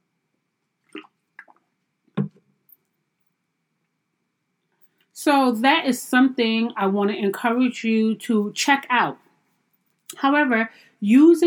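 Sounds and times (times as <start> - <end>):
sipping and swallowing water: 0.8 - 2.4
speech: 5.2 - 9.2, 10.2 - 11.4.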